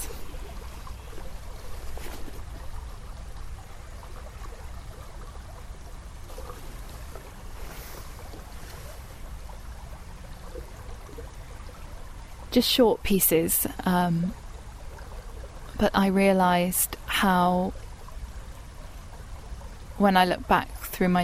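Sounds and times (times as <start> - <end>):
flowing river water with deep rumbling undertone: 0.0 - 21.2
speech: 12.6 - 14.4, 15.8 - 17.8, 20.0 - 21.2.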